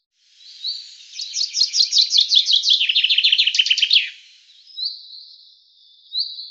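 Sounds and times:
common chaffinch song: 0.0s - 6.4s.

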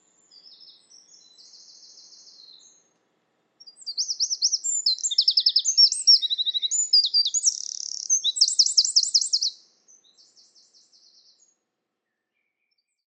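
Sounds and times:
bird song with high rapid zigzag trills and buzzy slurred notes: 3.7s - 9.6s.

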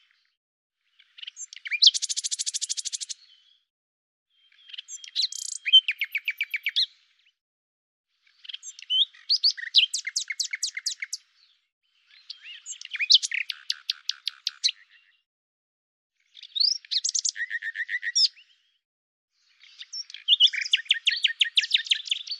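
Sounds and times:
common nightingale song: 0.9s - 3.6s, 4.3s - 7.0s, 8.2s - 15.2s, 16.2s - 18.7s, 19.4s - 22.3s.

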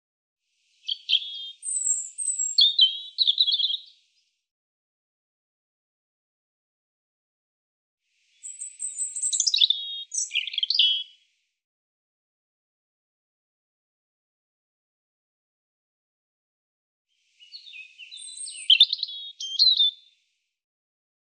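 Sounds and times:
European robin singing: 0.8s - 4.0s, 8.4s - 11.2s, 17.4s - 20.1s.

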